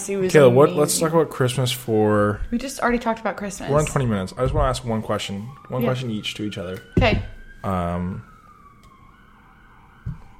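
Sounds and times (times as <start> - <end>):
speech: 0.0 - 8.3
faint emergency vehicle siren wail outside in a city: 0.0 - 10.3.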